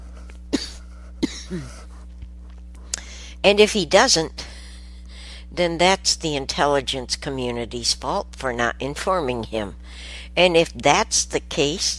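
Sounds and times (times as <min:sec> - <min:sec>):
steady low hum: 0:00.0 - 0:11.9
sharp coughs: 0:00.5 - 0:01.8
short voiced throat clearing: 0:00.5 - 0:01.8
speech: 0:01.5 - 0:01.9, 0:03.4 - 0:04.4, 0:05.5 - 0:11.9.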